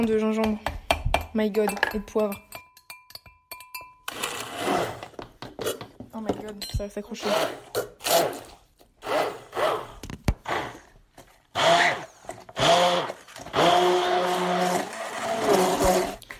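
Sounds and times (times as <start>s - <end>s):
speech: 0.0s - 0.7s, 1.3s - 2.5s, 6.2s - 8.4s
blender motor grinding a thick mixture of hazelnuts, lemon, ginger and pepper: 4.1s - 5.2s, 7.2s - 16.3s.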